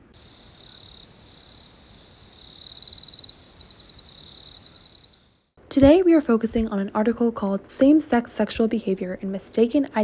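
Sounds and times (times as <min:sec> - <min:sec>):
male field cricket chirping: 0:00.0 - 0:05.3
speech: 0:05.8 - 0:10.0.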